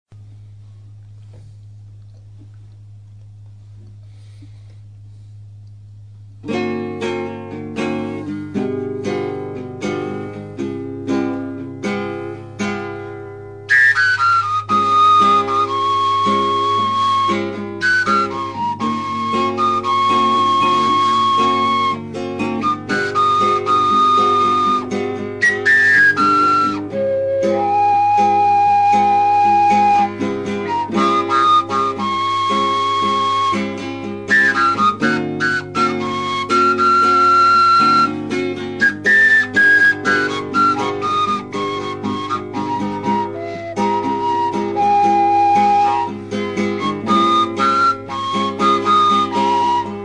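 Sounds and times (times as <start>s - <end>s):
guitar playing: 0.2s - 50.0s.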